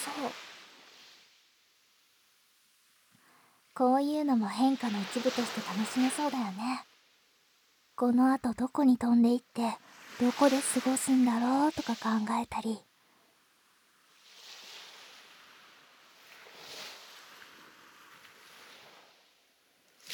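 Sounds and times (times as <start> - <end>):
ocean waves breaking near a harbor: 0.0 - 0.8, 4.0 - 6.8, 8.3 - 12.6
speech: 0.2 - 0.5, 3.8 - 6.9, 8.0 - 12.9.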